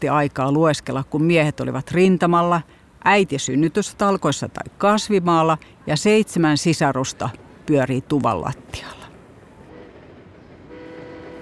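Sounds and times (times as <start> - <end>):
speech: 0.0 - 9.0
train clattering along railway track: 7.2 - 11.3.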